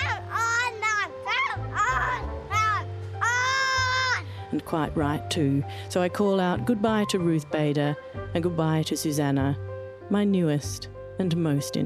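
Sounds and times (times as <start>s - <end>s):
toddler shouting by a garden fence: 0.0s - 4.3s
speech: 4.5s - 11.8s.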